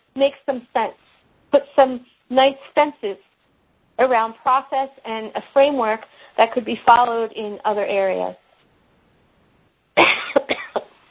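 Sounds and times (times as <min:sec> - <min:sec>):
speech: 0:00.2 - 0:03.3, 0:04.0 - 0:08.4
person speaking at a meeting coughing: 0:10.0 - 0:11.0.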